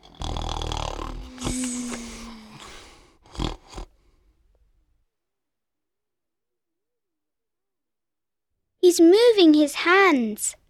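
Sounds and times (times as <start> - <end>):
sleeping male snoring loudly: 0.0 - 4.0
speech: 8.9 - 10.6.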